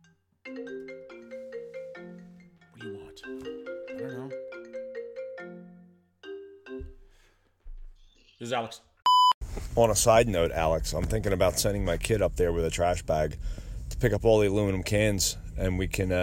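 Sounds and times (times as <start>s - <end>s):
phone's melodic electronic ringtone: 0.0s - 7.0s
speech: 8.4s - 8.9s, 9.8s - 16.2s.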